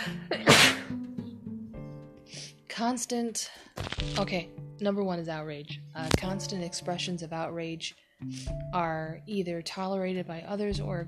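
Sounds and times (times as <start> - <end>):
person sneezing: 0.2 - 1.0
breathing: 2.2 - 2.6, 3.4 - 3.9, 8.0 - 8.6
speech: 2.8 - 11.0.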